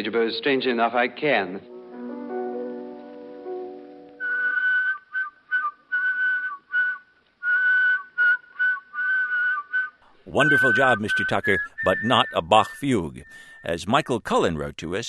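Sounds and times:
speech: 0.0s - 1.7s, 10.3s - 15.0s
person whistling a symphonic melody: 4.2s - 13.8s.

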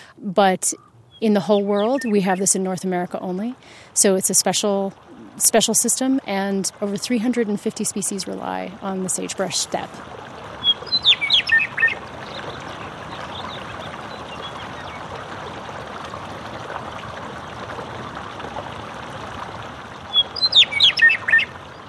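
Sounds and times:
speech: 0.2s - 10.4s
meadowlark singing bright high warbled phrases: 0.7s - 2.8s, 10.6s - 15.0s, 20.1s - 21.8s
steady rushing flow of a hot-spring runoff channel: 1.7s - 21.8s.

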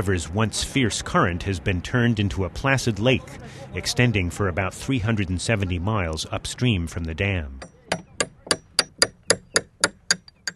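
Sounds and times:
speech: 0.0s - 8.0s
hammer striking a chisel as a carpenter works on his boat beside a reservoir: 7.6s - 10.5s.

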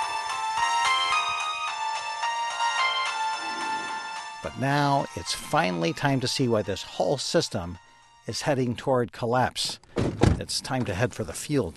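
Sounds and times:
mobile phone ringtone played from a cell phone: 0.0s - 5.2s
speech: 4.4s - 11.7s.

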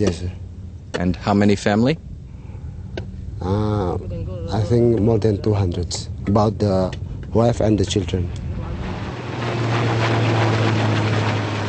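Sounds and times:
speech: 0.0s - 0.4s, 1.0s - 2.1s, 3.4s - 8.4s
helicopter passing overhead: 3.4s - 11.6s.

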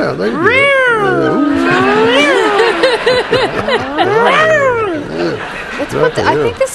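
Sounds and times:
speech: 0.1s - 1.3s, 3.2s - 4.6s, 5.4s - 6.7s
cat meowing: 0.3s - 2.8s, 4.0s - 5.2s
laughter: 1.4s - 6.7s.

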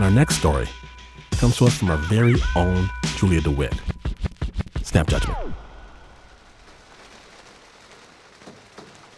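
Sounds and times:
speech: 0.0s - 3.9s, 4.9s - 5.6s
rain falling outside the window of a hut in Tongariro national park, New Zealand: 3.5s - 9.1s.

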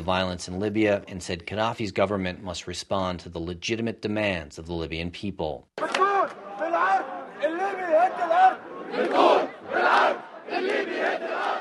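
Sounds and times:
speech: 0.0s - 6.4s
large crowd of protesters chanting outdoors: 5.8s - 11.5s.

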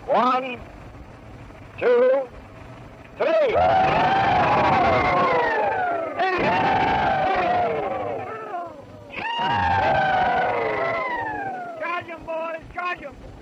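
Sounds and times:
speech: 0.1s - 0.8s, 1.8s - 2.4s, 3.2s - 4.2s
group of men giving a Confederate rebel yell: 3.4s - 11.8s.

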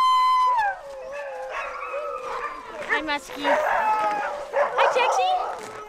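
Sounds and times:
sled dogs howling before dawn ahead of a training run: 0.5s - 5.8s
speech: 3.0s - 4.2s, 5.0s - 5.8s.

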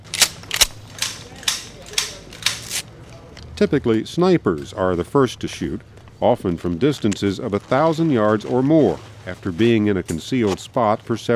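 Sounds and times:
soldiers checking their weapons with metallic clicks: 0.0s - 2.8s
low hum: 0.0s - 11.3s
speech: 3.6s - 11.3s.

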